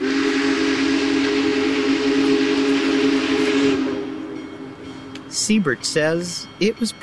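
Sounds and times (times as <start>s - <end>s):
steam locomotive whistle blaring: 0.0s - 5.4s
Big Boy steam locomotive pulling an 18-car train rushing past: 0.0s - 7.0s
steam locomotive bells ringing: 4.2s - 7.0s
speech: 5.5s - 7.0s.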